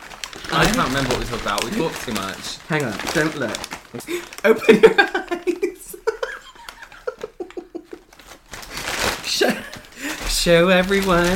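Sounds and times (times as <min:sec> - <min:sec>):
loud crinkling and rustling of plastic packaging: 0:00.0 - 0:11.3
speech: 0:00.5 - 0:05.8, 0:10.4 - 0:11.3
laughter: 0:04.0 - 0:08.2.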